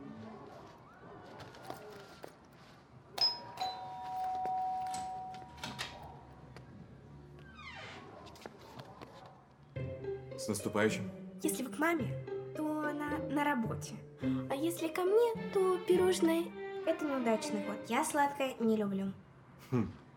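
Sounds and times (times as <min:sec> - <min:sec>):
faint scuffs and movement: 0:00.0 - 0:03.2, 0:07.4 - 0:09.6
two-note electronic doorbell chime at an apartment door: 0:03.2 - 0:05.6
speech: 0:10.4 - 0:12.7, 0:13.4 - 0:20.0.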